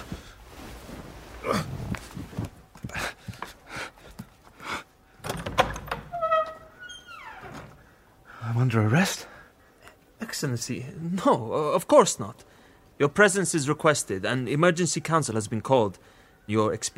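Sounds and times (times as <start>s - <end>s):
door creaking open: 5.2s - 7.9s
speech: 8.7s - 9.3s, 10.4s - 16.9s.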